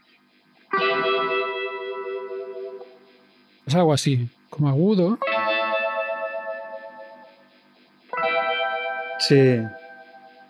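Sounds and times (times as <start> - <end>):
electric guitar chord with swirling watery phaser-like effect: 0.7 - 3.0, 5.2 - 7.4, 8.1 - 10.4
speech: 3.7 - 5.4, 9.3 - 9.8.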